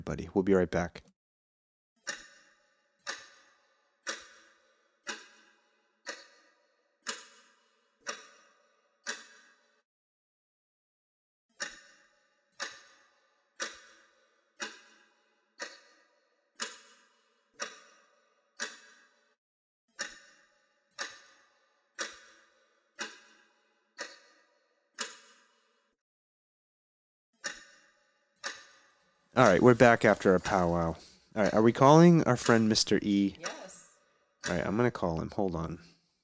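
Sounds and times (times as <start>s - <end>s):
speech: 0.0s - 1.1s, 29.4s - 33.4s, 34.5s - 35.9s
clock ticking: 29.4s - 33.8s, 34.4s - 35.8s.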